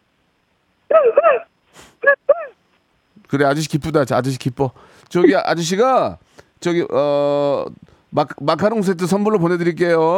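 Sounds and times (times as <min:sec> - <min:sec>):
person on a phone call imitating a happy excited dog: 0:00.9 - 0:02.6
speech: 0:03.3 - 0:10.1.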